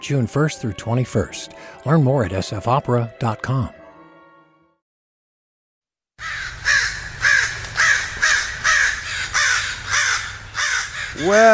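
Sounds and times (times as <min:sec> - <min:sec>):
speech: 0:00.0 - 0:03.8, 0:11.2 - 0:11.5
crows cawing: 0:06.2 - 0:11.5.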